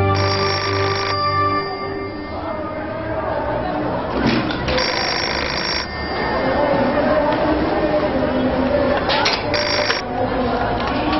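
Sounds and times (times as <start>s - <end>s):
telephone bell ringing: 0.2s - 2.9s, 4.7s - 7.2s, 9.5s - 10.1s
murmuring voices: 0.2s - 11.1s.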